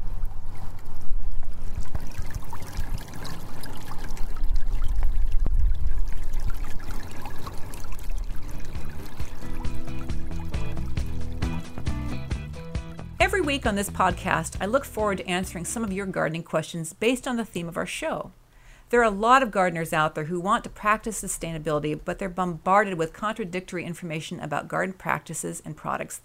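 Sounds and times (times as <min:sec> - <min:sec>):
creek water flowing and splashing into a pond in a front yard: 0:00.0 - 0:11.3
speech: 0:13.5 - 0:26.2.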